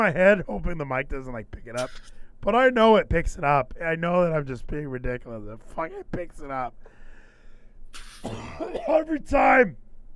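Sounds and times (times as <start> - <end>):
speech: 0.0 - 6.9, 7.9 - 9.8
person coughing: 1.8 - 2.2, 8.0 - 9.0
throat clearing: 8.0 - 8.9.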